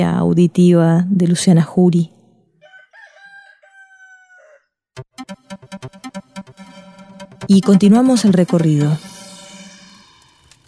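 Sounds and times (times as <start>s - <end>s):
speech: 0.0s - 2.2s, 7.5s - 9.1s
roosters crowing: 2.6s - 4.8s.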